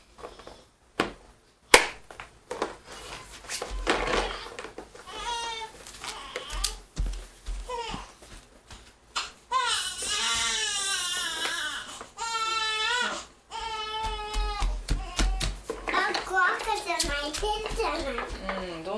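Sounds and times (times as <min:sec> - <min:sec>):
taps and handling noises: 0:00.2 - 0:09.4, 0:14.0 - 0:18.8
baby crying: 0:05.1 - 0:06.8, 0:07.7 - 0:08.2, 0:09.2 - 0:15.6.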